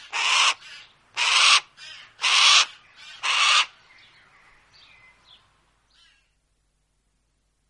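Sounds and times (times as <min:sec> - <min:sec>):
Harris's hawk harsh raspy screams: 0:00.1 - 0:00.6, 0:01.2 - 0:03.7.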